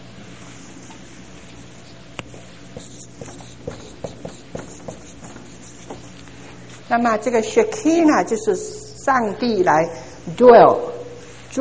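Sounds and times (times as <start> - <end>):
pen writing on a board: 2.2 - 6.2
speech: 6.9 - 10.9.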